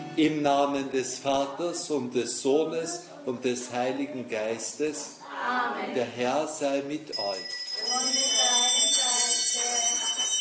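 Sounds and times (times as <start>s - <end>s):
speech: 0.2s - 8.4s
small bells ringing during a holy mass: 7.1s - 10.3s.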